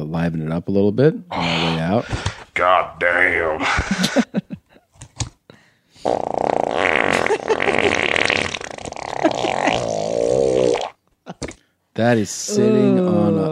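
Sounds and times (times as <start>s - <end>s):
speech: 0.1s - 4.4s, 12.0s - 13.5s
laughter: 3.6s - 4.8s, 7.2s - 8.0s, 9.1s - 9.9s
long loud buzzing fart: 6.0s - 11.0s.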